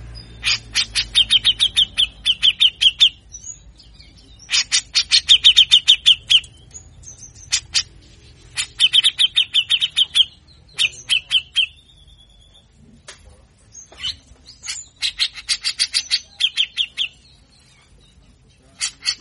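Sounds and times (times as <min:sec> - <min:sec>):
Grey-cheeked bulbul song of harsh chattering notes: 0:00.0 - 0:19.2.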